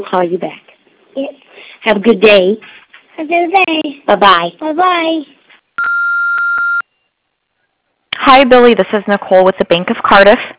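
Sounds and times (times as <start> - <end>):
speech: 0.0 - 0.6, 1.2 - 5.4, 8.2 - 10.5
answering machine beep: 5.8 - 6.9.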